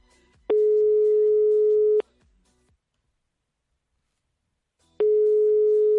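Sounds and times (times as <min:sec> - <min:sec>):
telephone ringback tone while calling a listener: 0:00.5 - 0:02.0, 0:05.0 - 0:05.9.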